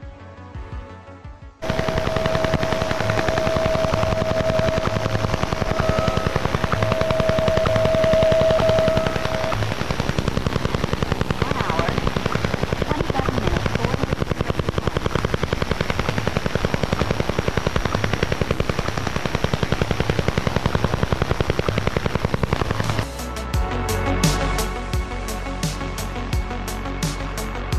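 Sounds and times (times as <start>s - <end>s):
shortwave radio static: 1.6s - 23.5s, 27.6s - 27.7s
over-the-horizon radar pulses tapping on shortwave: 1.6s - 27.7s
faint whistling tone: 3.2s - 9.7s.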